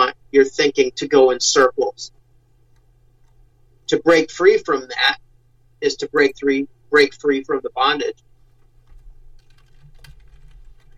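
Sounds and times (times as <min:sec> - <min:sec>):
low electrical hum: 0:00.0 - 0:10.9
speech: 0:00.3 - 0:02.2, 0:03.9 - 0:05.2, 0:05.8 - 0:08.3
fingers typing notes on a computer keyboard: 0:08.8 - 0:10.9.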